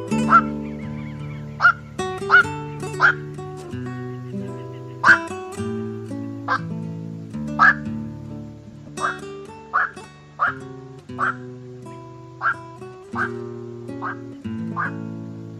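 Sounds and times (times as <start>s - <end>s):
black-crowned night heron croaking barks: 0.1s - 5.8s, 6.4s - 6.6s, 7.6s - 7.9s, 9.0s - 11.5s, 12.4s - 15.0s.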